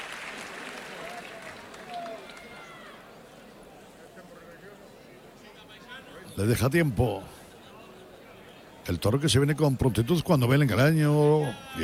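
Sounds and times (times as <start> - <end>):
large bullring crowd applauding and cheering: 0.0 - 3.1
speech: 6.4 - 7.4, 8.8 - 11.8.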